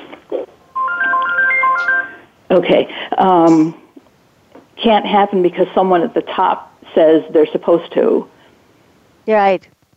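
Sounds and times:
mobile phone short electronic ringtone: 0.7 - 2.3
speech: 2.5 - 3.8, 4.8 - 8.3, 9.3 - 9.8.

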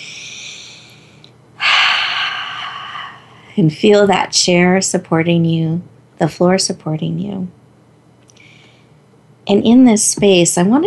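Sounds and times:
deep cleansing breath: 0.0 - 3.6, 8.4 - 9.0
speech: 3.6 - 7.6, 9.5 - 10.8.

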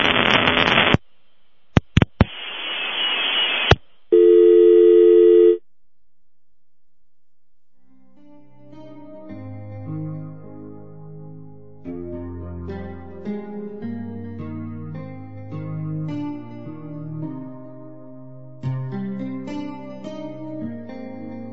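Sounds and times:
harsh static: 0.0 - 5.6
electronic phone tone: 4.1 - 5.6.

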